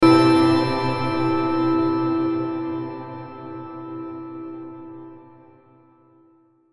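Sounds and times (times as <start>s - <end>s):
hit burst chime with reverb: 0.0s - 4.9s.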